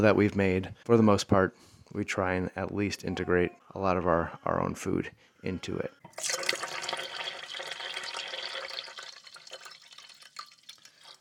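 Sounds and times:
speech: 0.0 - 6.9
reverse osmosis filtered water pouring into a tea kettle: 6.1 - 11.1.

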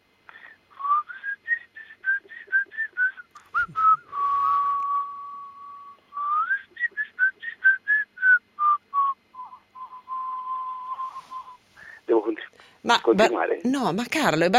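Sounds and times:
man whistling a tune: 0.8 - 11.6
speech: 12.9 - 14.5.

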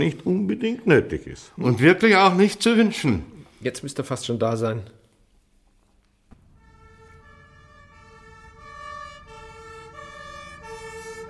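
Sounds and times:
speech: 0.0 - 5.0
faint fire brigade siren wailing: 6.3 - 11.2.

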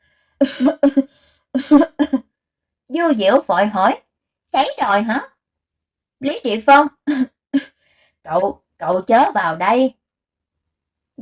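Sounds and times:
speech: 0.4 - 2.2, 2.9 - 5.3, 6.2 - 10.0
person coughing in thick smoke from a kitchen fire: 0.4 - 2.3.

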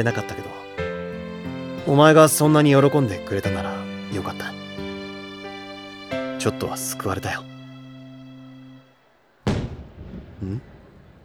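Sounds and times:
speech: 0.0 - 0.6, 1.8 - 4.6, 6.4 - 7.5, 10.4 - 10.7
fireworks booming and crackling: 9.4 - 11.2.

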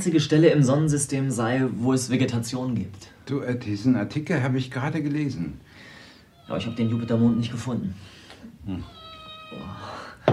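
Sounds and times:
speech: 0.0 - 5.7, 6.5 - 10.3
small cat meowing: 6.3 - 7.9, 8.7 - 9.8.

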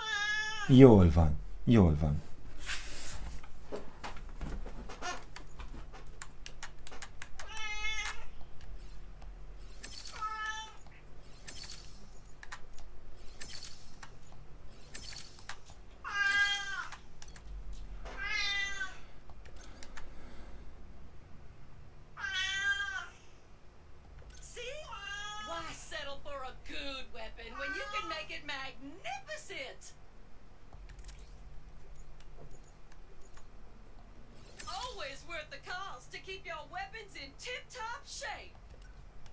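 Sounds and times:
cat meowing: 0.0 - 0.7, 7.4 - 8.3, 16.0 - 17.0, 18.2 - 19.1, 22.2 - 23.2, 24.9 - 25.8, 27.5 - 28.2
faint low hum: 0.0 - 39.3
speech: 0.7 - 2.3.

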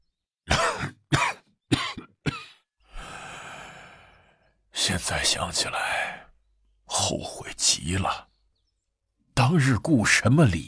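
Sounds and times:
old emperor coughing hoarsely: 0.5 - 2.7
raspy breathy exhale: 2.9 - 4.6
speech: 4.9 - 6.2, 7.1 - 8.3, 9.5 - 10.6.

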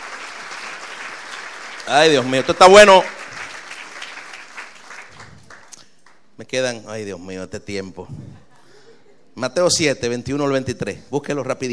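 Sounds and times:
church congregation applause during a sermon: 0.0 - 5.8
speech: 1.9 - 3.2, 6.4 - 8.4, 9.4 - 11.7.

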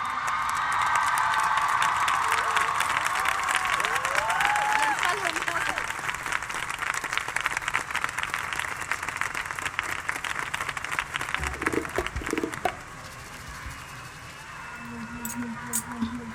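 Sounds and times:
cheers: 0.0 - 6.6
audience applauding a singer at a live event: 0.0 - 13.5
whistles: 13.1 - 16.2.

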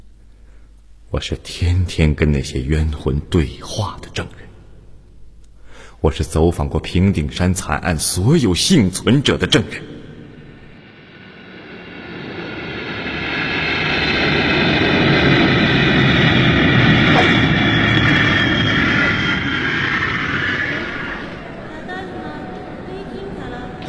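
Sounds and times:
speech: 1.1 - 4.5, 6.0 - 9.9
aircraft engines roaring at Narita airport: 10.1 - 23.8.

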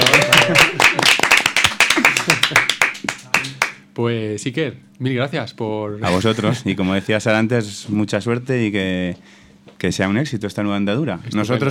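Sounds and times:
voices cheering: 0.0 - 3.6
group applauding at a live event: 0.0 - 3.8
speech: 4.0 - 11.6.

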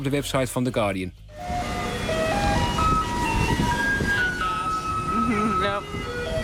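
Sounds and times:
speech: 0.0 - 1.6
garbage truck playing a classical tune on collection rounds: 1.3 - 6.4.

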